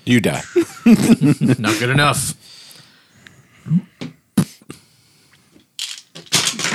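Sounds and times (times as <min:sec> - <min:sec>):
speech: 0:00.1 - 0:02.6, 0:03.7 - 0:04.1
laughter: 0:00.3 - 0:02.3
dice rolling on a hard tabletop: 0:05.8 - 0:06.7.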